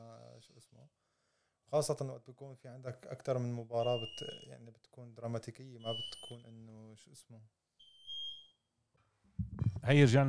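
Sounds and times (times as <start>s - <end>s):
speech: 1.7s - 7.6s, 9.5s - 10.2s
long high-pitched smoke alarm beep: 3.8s - 4.5s, 5.8s - 6.5s, 7.8s - 8.7s.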